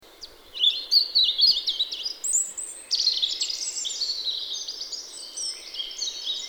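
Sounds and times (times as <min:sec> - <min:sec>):
European robin Erithacus rubecula singing: 0:00.1 - 0:06.4.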